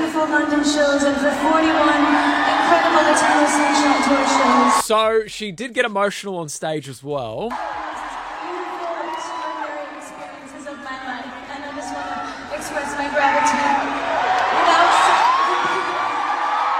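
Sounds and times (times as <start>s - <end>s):
large concert crowd cheering loudly: 0.0s - 5.1s, 7.5s - 16.7s
speech: 0.2s - 7.8s
high whoops and shouted voices: 1.7s - 4.8s, 7.6s - 11.0s, 13.3s - 16.7s.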